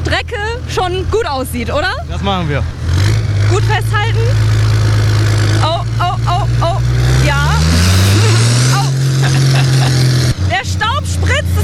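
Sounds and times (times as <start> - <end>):
tractor engine running during test drive: 0.0 - 11.6
speech: 0.8 - 2.8, 3.5 - 4.6, 10.6 - 11.6
laughter: 5.6 - 10.4.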